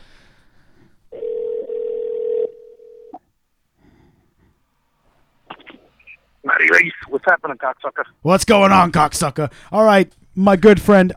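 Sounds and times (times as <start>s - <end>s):
telephone tone from an outgoing call: 1.1s - 3.2s
speech: 7.2s - 11.1s.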